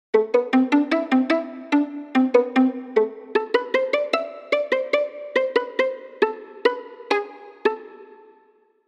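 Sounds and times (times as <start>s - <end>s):
solo violin pizzicato: 0.1s - 8.3s.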